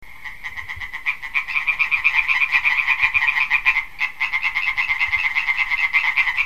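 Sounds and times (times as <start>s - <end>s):
amphibian croaking in raspy pulses: 0.1s - 6.4s.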